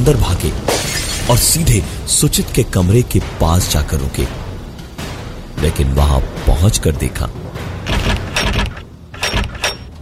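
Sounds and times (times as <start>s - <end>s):
speech: 0.0s - 0.7s, 1.3s - 4.4s, 5.6s - 7.4s
locked wooden door and latch rattling as someone forces it: 7.4s - 10.0s.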